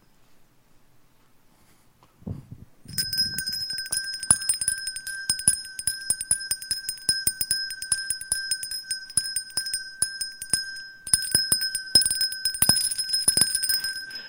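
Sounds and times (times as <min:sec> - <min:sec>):
charity bell ringer's handbell ringing: 0:02.9 - 0:14.2.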